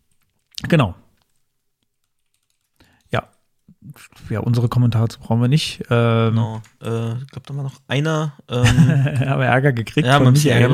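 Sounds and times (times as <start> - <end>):
speech: 0.6 - 1.0, 3.1 - 10.7
typing on a computer keyboard: 2.0 - 3.4
laughter: 8.5 - 9.4.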